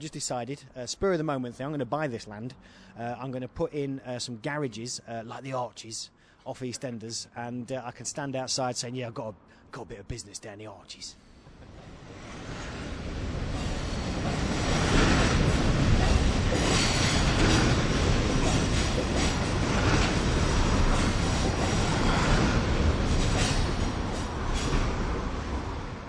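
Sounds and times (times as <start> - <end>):
speech: 0.0 - 11.3
cargo train rumbling past underneath a bridge: 11.4 - 26.0
cargo train wheels squealing: 12.2 - 24.9.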